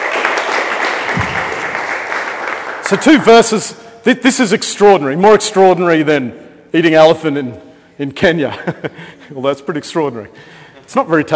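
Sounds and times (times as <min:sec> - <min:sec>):
audience applauding a speaker giving a religious talk: 0:00.0 - 0:03.3
speech: 0:02.9 - 0:11.3.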